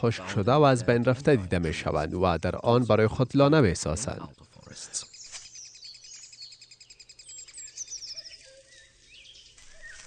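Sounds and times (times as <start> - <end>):
speech: 0.0 - 5.0
blue tit calls with chirps and trilling: 4.0 - 10.0.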